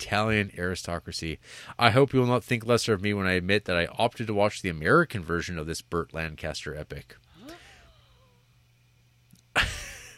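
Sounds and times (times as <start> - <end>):
speech: 0.0 - 7.6, 9.6 - 9.8
person gasping: 7.3 - 8.4.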